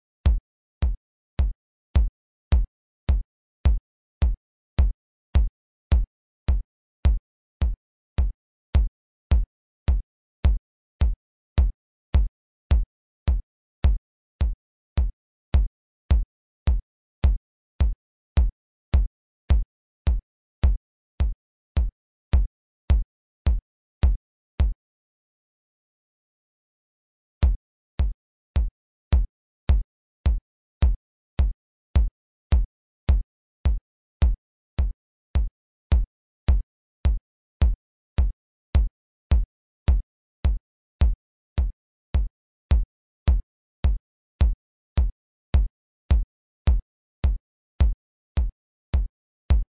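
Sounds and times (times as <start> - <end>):
bleepy four-on-the-floor kick drums at 106 BPM: 0.3 - 24.7, 27.4 - 49.6.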